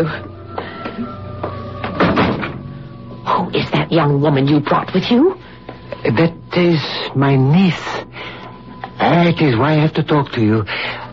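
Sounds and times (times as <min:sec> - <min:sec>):
speech: 0:00.0 - 0:01.2, 0:03.3 - 0:08.0, 0:09.0 - 0:11.0
faint steady hum: 0:00.0 - 0:11.1
rattling door thud: 0:01.8 - 0:02.7.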